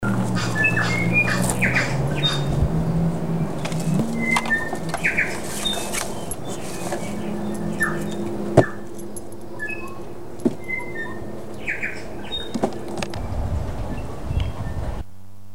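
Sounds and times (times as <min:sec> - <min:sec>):
tui at tairei mouth: 0:00.0 - 0:15.1.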